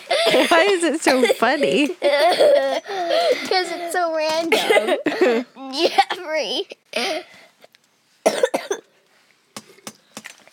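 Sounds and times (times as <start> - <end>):
loud coughing: 0.0 - 7.3, 8.2 - 8.9
speech: 0.3 - 7.4.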